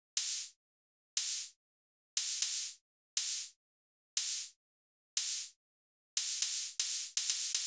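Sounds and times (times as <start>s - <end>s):
dirty open hi-hat: 0.2s - 0.6s, 1.2s - 1.5s, 2.2s - 3.5s, 6.2s - 7.6s.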